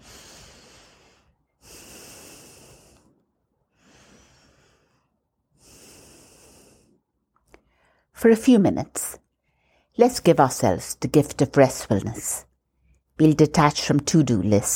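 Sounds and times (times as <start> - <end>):
slow deep meditative breathing: 0.0 - 8.2
speech: 8.2 - 9.2, 10.0 - 12.5, 13.2 - 14.7.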